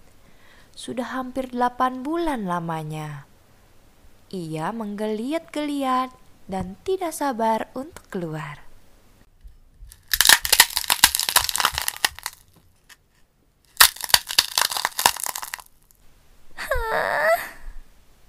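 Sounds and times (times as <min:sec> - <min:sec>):
speech: 0:00.8 - 0:03.3, 0:04.3 - 0:08.6
dry crunchy cracking: 0:09.9 - 0:16.0.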